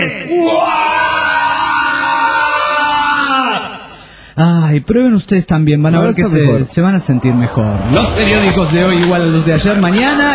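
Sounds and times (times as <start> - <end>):
speech: 0.1 - 1.0, 4.4 - 10.3
few voices screaming together for stress relief: 0.1 - 3.9.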